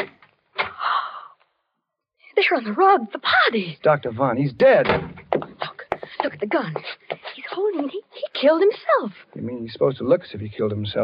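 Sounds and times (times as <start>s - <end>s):
speech: 2.4s - 5.2s, 6.2s - 7.0s, 7.6s - 11.0s
door creaking open: 4.7s - 5.6s.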